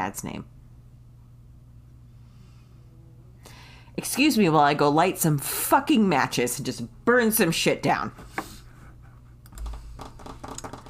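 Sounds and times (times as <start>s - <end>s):
speech: 0.0s - 0.6s, 4.0s - 8.3s
steady low hum: 0.0s - 10.8s
typing a message on a computer keyboard: 9.5s - 10.8s.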